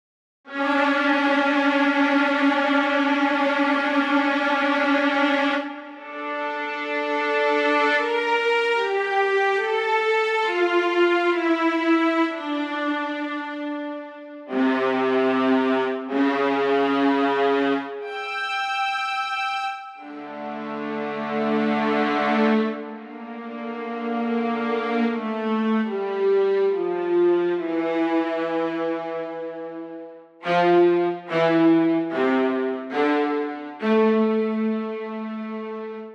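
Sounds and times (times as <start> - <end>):
viola: 0.5 - 36.1.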